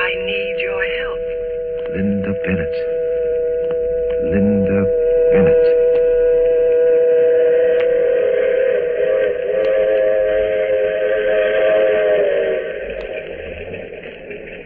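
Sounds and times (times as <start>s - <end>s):
rumbling clatter of a passing train: 0.0s - 1.2s, 8.9s - 14.6s
loud multi-toned train whistle blast: 0.0s - 14.1s
speech: 2.0s - 2.9s.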